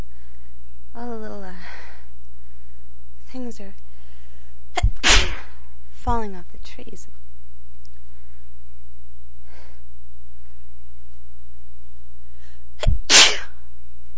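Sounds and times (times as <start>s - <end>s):
person breathing: 0.0s - 0.7s, 1.5s - 3.0s, 3.9s - 4.6s, 8.0s - 8.7s, 9.4s - 10.8s, 12.2s - 12.8s
speech: 3.5s - 3.9s, 6.0s - 7.2s
person sneezing: 4.8s - 5.5s, 12.8s - 13.6s.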